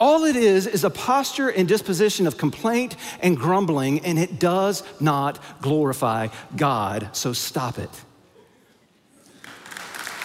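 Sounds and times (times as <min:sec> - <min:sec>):
speech: 0:00.2 - 0:08.1
audience applause: 0:09.3 - 0:10.2.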